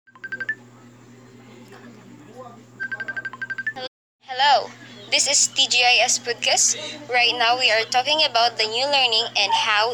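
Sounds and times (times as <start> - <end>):
telephone being dialed with tone keypad presses: 0.1 - 0.6, 2.8 - 3.8
speech: 5.1 - 9.9.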